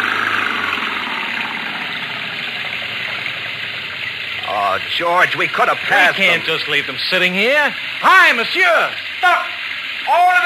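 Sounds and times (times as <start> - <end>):
car engine revving while stuck in mud: 0.0 - 6.9
speech: 4.8 - 9.5, 10.1 - 10.4.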